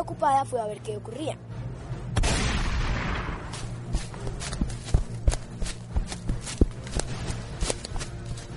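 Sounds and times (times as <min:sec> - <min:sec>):
speech: 0:00.0 - 0:01.6
sharp gunshot with noisy echo: 0:02.2 - 0:03.6
quick uneven footsteps hurrying over ground: 0:03.2 - 0:08.5.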